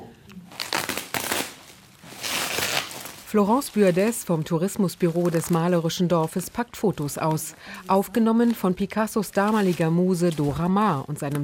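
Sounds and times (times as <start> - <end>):
paper being crumpled: 0.5 - 6.5, 8.4 - 11.4
speech: 3.3 - 11.4.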